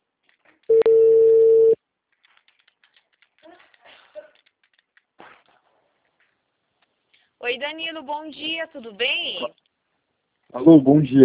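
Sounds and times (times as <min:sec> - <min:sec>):
telephone ringing tone while a call is placed: 0:00.7 - 0:01.8
speech: 0:07.5 - 0:09.6, 0:10.6 - 0:11.2.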